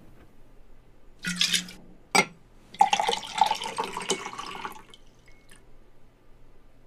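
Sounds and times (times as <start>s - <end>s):
glass and carafe clinking: 1.3s - 4.6s
iced tea poured from a carafe into a glass: 2.7s - 5.6s.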